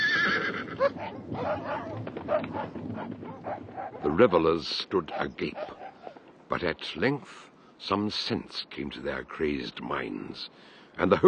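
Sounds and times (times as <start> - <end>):
horse whinnying: 0.0 - 3.6
released hounds barking: 0.8 - 6.2
scuffle of movement: 1.0 - 4.1
speech: 4.2 - 5.8, 6.5 - 11.2.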